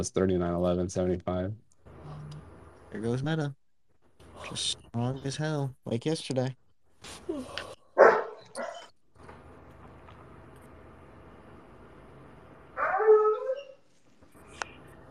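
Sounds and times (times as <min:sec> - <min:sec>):
speech: 0:00.0 - 0:01.7, 0:02.9 - 0:03.6, 0:04.4 - 0:07.7
steady low hum: 0:00.0 - 0:15.0
dog barking: 0:08.0 - 0:08.9.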